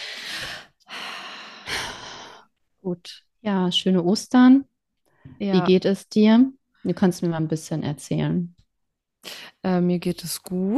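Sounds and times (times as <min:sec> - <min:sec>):
slow deliberate deep breath with forceful sigh-like exhale: 0:00.0 - 0:02.5, 0:09.2 - 0:09.6
speech: 0:02.8 - 0:08.6, 0:09.2 - 0:10.7.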